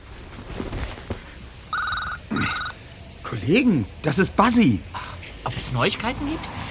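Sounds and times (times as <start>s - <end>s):
mobile phone ringing with warbling electronic tones: 1.7s - 2.8s
speech: 3.3s - 6.6s.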